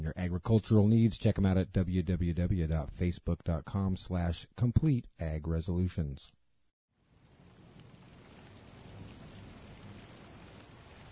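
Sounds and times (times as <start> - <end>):
speech: 0.1 - 6.4
steady dense rain pouring down: 7.1 - 11.1.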